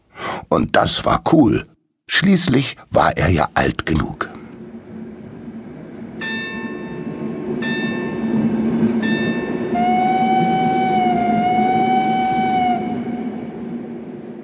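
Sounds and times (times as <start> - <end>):
speech: 0.5 - 4.3
train rumbling at a station: 3.0 - 14.4
bell strikes at a train station: 6.2 - 9.7
long sustained tonal train whistle: 9.5 - 13.6.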